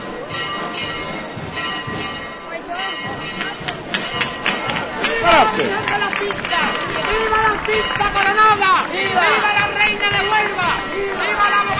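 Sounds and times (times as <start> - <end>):
bustling crowd murmuring: 0.0 - 11.7
church bells pealing: 0.0 - 11.7
people shouting: 4.6 - 11.7
speech: 5.3 - 6.0.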